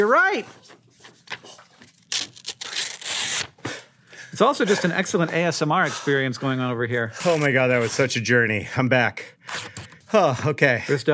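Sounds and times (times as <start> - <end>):
speech: 0.0 - 0.8, 4.4 - 11.1
paper being torn by hand: 0.6 - 3.6, 7.1 - 8.1, 9.4 - 9.9.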